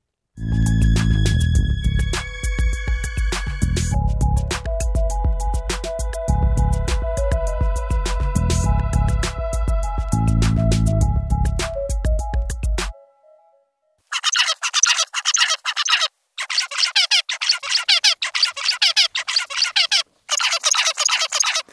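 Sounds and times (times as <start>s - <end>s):
brief low tonal sound: 0.4s - 11.8s
male zebra finch calling with nasal chirps and squeaks: 14.1s - 21.6s.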